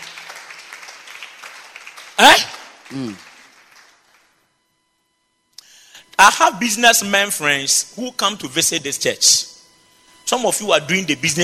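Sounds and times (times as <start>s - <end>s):
audience clapping in church: 0.0s - 4.4s
person shouting: 2.2s - 3.2s
speech: 2.4s - 3.3s, 6.2s - 9.5s, 10.3s - 11.4s.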